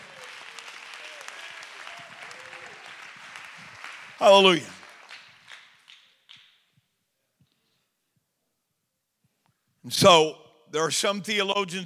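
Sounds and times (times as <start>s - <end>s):
large group applauding in a room: 0.0s - 6.5s
speech: 4.2s - 4.8s, 9.9s - 11.8s.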